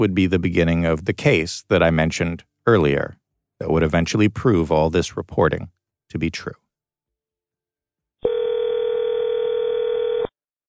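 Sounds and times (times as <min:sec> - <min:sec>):
speech: 0:00.0 - 0:06.6
telephone dial tone: 0:08.2 - 0:10.4.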